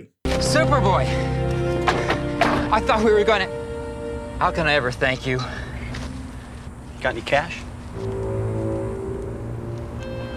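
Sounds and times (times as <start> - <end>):
speech: 0.0 - 1.6, 2.7 - 3.6, 4.4 - 5.6, 7.0 - 8.2
SUV engine revving: 7.9 - 10.3.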